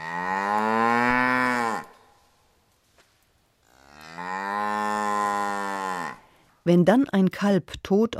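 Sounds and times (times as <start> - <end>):
cattle mooing: 0.0 - 2.1, 3.7 - 6.3
speech: 6.6 - 8.1.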